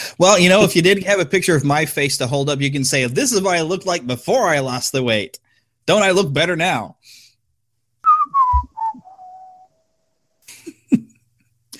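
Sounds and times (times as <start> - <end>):
speech: 0.2 - 7.2
descending video-game-style whistle: 8.1 - 9.7.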